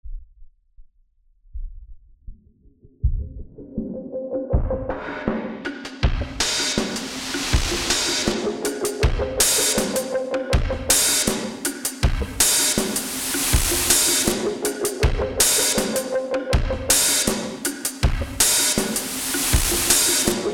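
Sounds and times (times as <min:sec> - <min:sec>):
chill beat music: 0:03.2 - 0:20.5.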